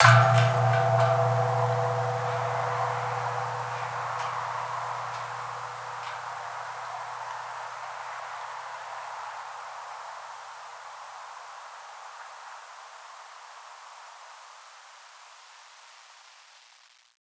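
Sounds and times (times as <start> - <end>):
gamelan suwukan gong ringing: 0.0 - 7.7.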